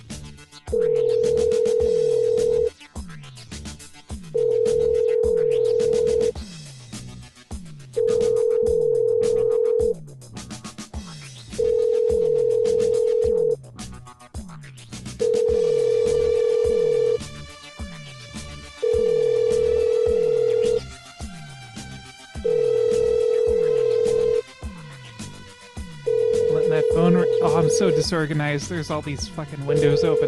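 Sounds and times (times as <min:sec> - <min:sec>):
telephone ringing: 0:00.7 - 0:02.7, 0:04.4 - 0:06.4, 0:08.0 - 0:09.9, 0:11.6 - 0:13.6, 0:15.2 - 0:17.2, 0:18.8 - 0:20.9, 0:22.4 - 0:24.4, 0:26.1 - 0:28.3, 0:29.6 - 0:30.2
speech: 0:28.1 - 0:30.2.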